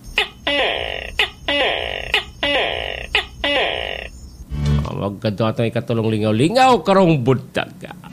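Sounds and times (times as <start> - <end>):
tokay gecko calling: 0.0 - 4.5
speech: 5.0 - 8.0.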